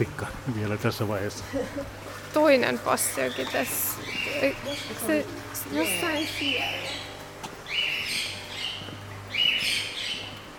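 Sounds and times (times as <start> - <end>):
steady low hum: 0.0 - 10.5
speech: 0.1 - 7.0
real live wild birds chirping: 3.0 - 10.5
wild birds' rising squawk-like calls: 3.2 - 5.2, 5.8 - 10.4.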